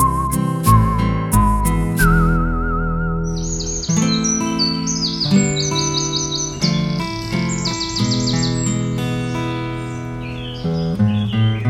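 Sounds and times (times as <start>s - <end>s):
steady musical backing with bass and chords: 0.0s - 4.8s
two birds chirping and trilling: 3.2s - 11.6s.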